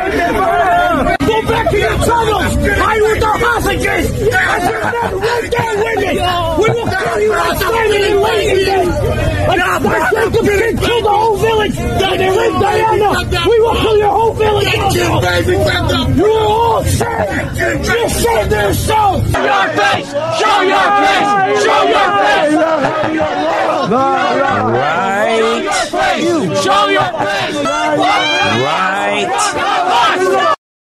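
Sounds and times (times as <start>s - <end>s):
laughter: 0.0s - 30.5s
crowd yelling and screaming at a protest: 0.0s - 30.6s
speech: 9.6s - 30.5s.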